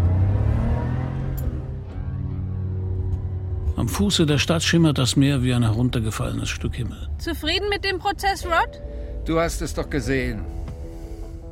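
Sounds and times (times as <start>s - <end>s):
bronze Porsche sports car engine driving off toward the ocean: 0.0s - 3.6s
speech: 3.8s - 10.6s.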